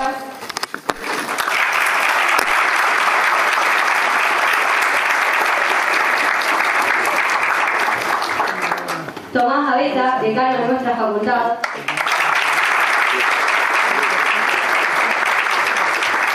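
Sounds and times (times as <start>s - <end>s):
applause from a sizable audience: 0.9s - 9.2s, 11.6s - 16.3s
speech: 9.4s - 12.1s.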